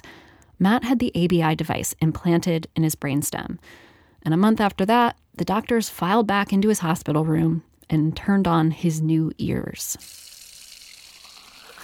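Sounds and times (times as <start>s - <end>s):
speech: 0.6s - 10.3s
running water: 10.0s - 11.8s.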